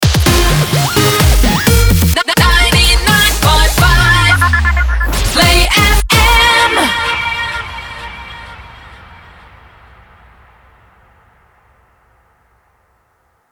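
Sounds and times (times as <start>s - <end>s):
music mix: 0.0s - 9.1s.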